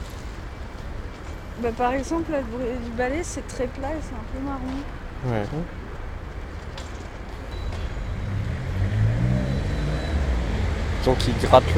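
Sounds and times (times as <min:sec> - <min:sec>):
constant wash of road noise: 0:00.0 - 0:11.7
speech: 0:01.6 - 0:05.8, 0:11.0 - 0:11.7
cars driving past: 0:03.8 - 0:11.7
vehicle with a droning engine tone: 0:07.4 - 0:11.7.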